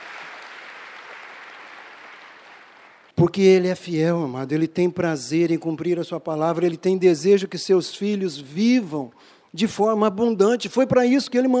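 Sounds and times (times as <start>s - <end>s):
crowd clapping: 0.0s - 3.2s
speech: 3.2s - 11.5s.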